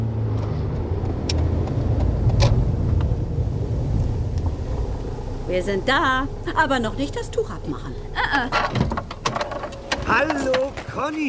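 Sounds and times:
road and engine rumble inside a moving car: 0.0s - 11.2s
speech: 5.5s - 9.0s, 10.1s - 11.2s.

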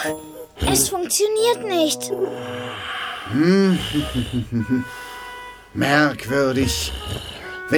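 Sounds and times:
speech: 0.0s - 5.1s, 5.7s - 7.7s
voice imitating snoring: 2.1s - 4.9s, 6.5s - 7.7s
short rhythmic snuffling snorts: 2.3s - 4.6s, 6.4s - 7.7s.

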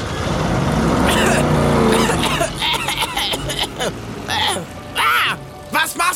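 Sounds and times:
car engine revving and pulling away with spinning tires: 0.0s - 4.9s
person coughing: 1.1s - 4.6s.

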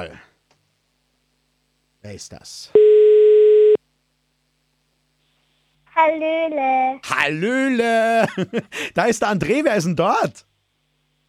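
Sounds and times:
speech: 0.0s - 0.3s, 2.0s - 2.8s, 6.0s - 10.5s
electronic telephone dialing and ringing tone: 2.8s - 3.8s.

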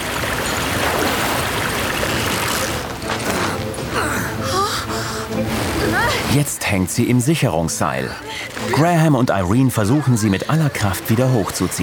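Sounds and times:
rushing river water churning and splashing: 0.0s - 11.8s
person gasping: 3.3s - 5.3s
speech: 6.3s - 11.8s.

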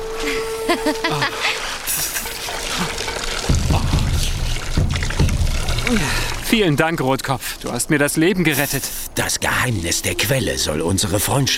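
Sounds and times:
speech: 0.7s - 2.1s, 5.9s - 11.5s
water splashing and pouring in a rushing stream: 1.0s - 7.6s.

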